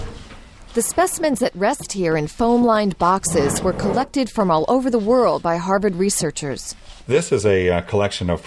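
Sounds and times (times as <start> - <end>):
speech: 0.7 - 8.4
specimen cabinet drawer pulled open with wooden clunks and sliding rumble: 3.2 - 4.2.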